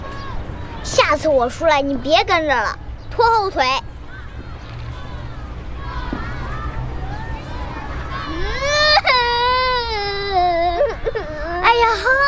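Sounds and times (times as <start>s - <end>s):
speech: 1.0s - 3.9s
child crying in a loud high wail: 8.1s - 12.2s.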